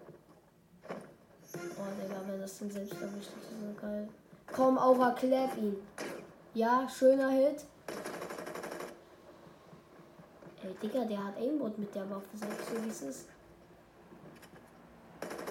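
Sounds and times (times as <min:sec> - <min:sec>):
speech: 0:01.7 - 0:06.0, 0:06.6 - 0:07.7, 0:10.7 - 0:13.4
video game automatic gunfire spray: 0:07.9 - 0:09.0, 0:12.4 - 0:13.3, 0:15.2 - 0:15.5.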